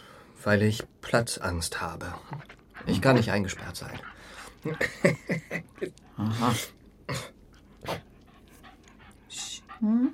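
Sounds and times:
speech: 0:00.4 - 0:08.0, 0:09.8 - 0:10.1
small female mongrel dog panting: 0:01.7 - 0:06.8, 0:07.5 - 0:10.1
laughter: 0:02.9 - 0:06.6.

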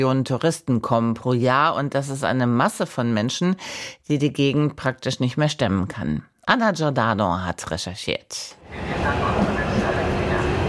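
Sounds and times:
speech: 0:00.0 - 0:09.6
train pulling into a small station: 0:08.6 - 0:10.6.

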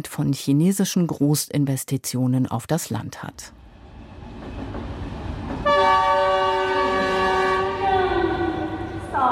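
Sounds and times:
speech: 0:00.0 - 0:03.6
high-speed train horn blast echoing in station hall: 0:05.6 - 0:09.2.

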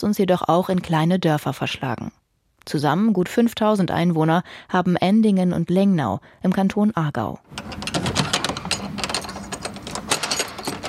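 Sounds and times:
speech: 0:00.0 - 0:08.0
heavy iron key grinding and clicking in a lock: 0:07.5 - 0:10.8.

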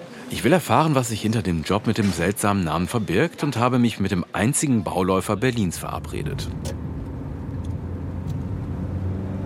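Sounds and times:
speech: 0:00.3 - 0:06.8
car driving through city streets with engine and tyre rumble: 0:05.5 - 0:09.4.

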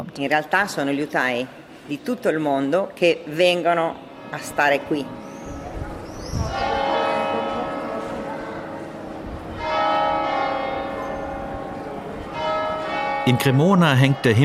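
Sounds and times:
speech: 0:00.1 - 0:05.3, 0:13.3 - 0:14.4
deep cathedral bells ringing through the old town in Cremona: 0:04.2 - 0:14.4.

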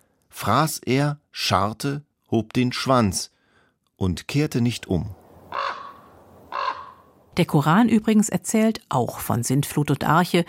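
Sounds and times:
speech: 0:00.4 - 0:03.4, 0:04.0 - 0:05.2, 0:07.4 - 0:10.4
raven cawing: 0:05.4 - 0:07.2.

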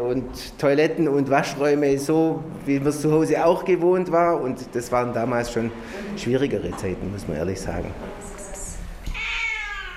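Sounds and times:
speech: 0:00.0 - 0:08.2
cat meowing: 0:09.1 - 0:09.9.

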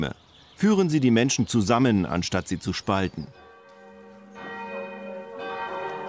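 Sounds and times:
speech: 0:00.0 - 0:03.4
church bells ringing played from a recording: 0:03.3 - 0:06.0.

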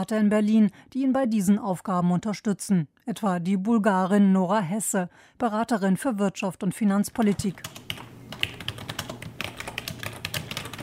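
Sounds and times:
speech: 0:00.0 - 0:08.0
typing on a computer keyboard in an office: 0:07.1 - 0:10.8.

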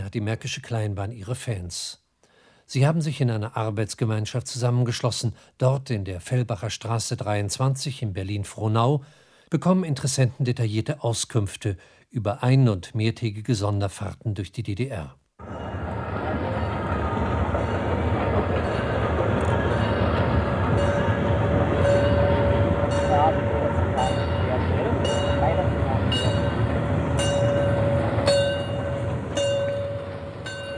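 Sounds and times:
speech: 0:00.1 - 0:02.0, 0:02.7 - 0:15.6
locomotive-hauled passenger train rolling along rails through the Oderbruch: 0:15.4 - 0:30.7.

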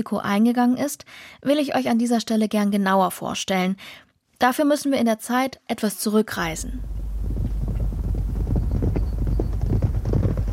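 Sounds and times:
speech: 0:00.0 - 0:07.0
wind noise: 0:06.5 - 0:10.5
horses galloping on a racetrack at the Derby in Epsom: 0:06.8 - 0:10.5.

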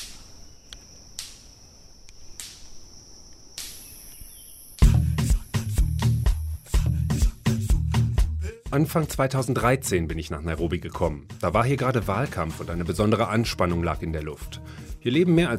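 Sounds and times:
electric fence snapping from leaf contact: 0:00.0 - 0:04.1
steady high insect-like whine: 0:03.8 - 0:07.9
speech: 0:08.7 - 0:15.5.

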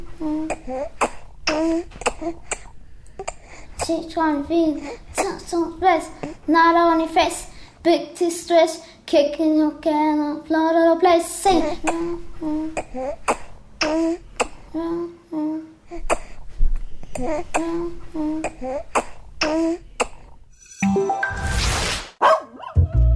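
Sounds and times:
speech: 0:00.2 - 0:02.6, 0:03.9 - 0:14.2, 0:14.8 - 0:16.2, 0:17.2 - 0:19.9
burst of harsh noise: 0:21.2 - 0:22.2
dog barking: 0:22.2 - 0:22.8.

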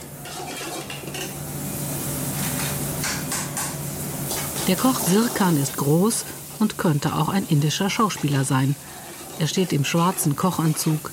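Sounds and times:
continuous loud frying hiss in a small restaurant kitchen: 0:00.0 - 0:11.1
speech: 0:04.7 - 0:11.1
steady stirring of kingfish, okra and jackfruit curries: 0:07.6 - 0:11.1.

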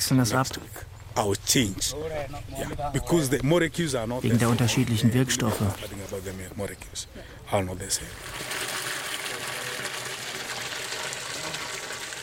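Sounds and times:
speech: 0:00.1 - 0:08.6
water being pumped into a large blue plastic rain barrel on a tomato farm: 0:08.1 - 0:12.2.

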